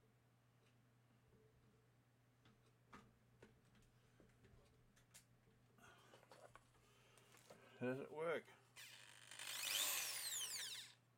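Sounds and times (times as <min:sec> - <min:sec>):
speech: 0:07.8 - 0:08.6
small 10mm power drill whirring: 0:08.8 - 0:11.0.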